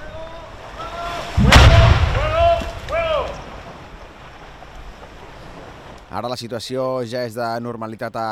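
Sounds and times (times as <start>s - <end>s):
underwater explosion of an 81 mm mortar bomb detonated by a navy diving unit: 1.3s - 3.7s
speech: 6.2s - 8.3s.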